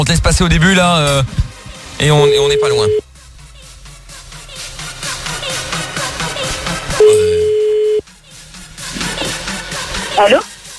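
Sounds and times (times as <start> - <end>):
speech: 0.0 - 1.4, 2.0 - 3.0, 10.2 - 10.5
telephone ringback tone while calling someone: 2.2 - 3.0, 7.0 - 8.0.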